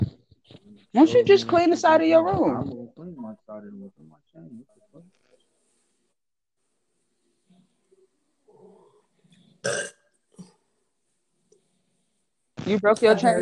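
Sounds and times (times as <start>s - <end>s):
speech: 0.9s - 2.9s, 12.7s - 13.4s
person burping: 9.6s - 10.0s.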